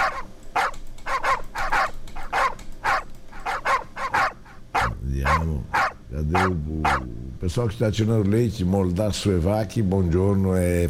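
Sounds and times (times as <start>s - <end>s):
dogs barking: 0.0s - 7.1s
speech: 5.4s - 10.8s.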